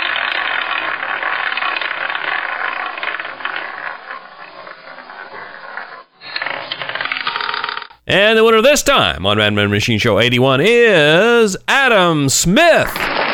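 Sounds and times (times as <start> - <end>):
prize wheel spinning with a fast ratcheting clatter: 0.0 - 8.0
speech: 8.1 - 13.2.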